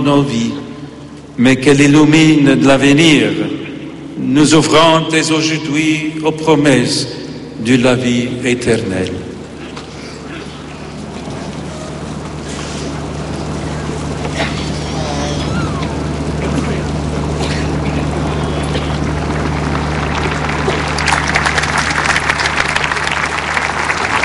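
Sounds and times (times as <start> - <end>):
speech: 0.0 - 0.7, 1.4 - 3.6, 4.2 - 9.3
low steady hum: 0.0 - 24.2
large crowd of pilgrims applauding: 9.6 - 24.2.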